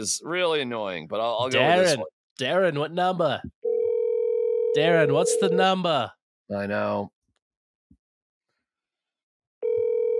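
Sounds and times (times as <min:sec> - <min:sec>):
speech: 0:00.0 - 0:03.6, 0:04.7 - 0:07.2
electronic call tone from a phone speaker: 0:03.6 - 0:05.6, 0:09.6 - 0:10.1.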